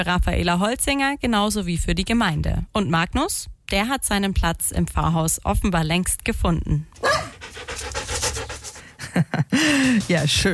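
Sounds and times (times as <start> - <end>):
speech: 0.0 - 7.9, 9.2 - 10.5
dog panting: 7.0 - 10.5.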